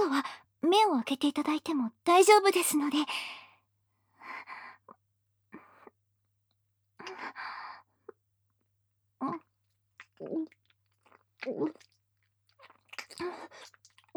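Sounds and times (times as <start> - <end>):
speech: 0.8 - 3.4, 10.2 - 10.6, 11.4 - 11.9, 13.2 - 13.8
wet sloppy tongue kissing with smacking and slurping: 12.6 - 14.0.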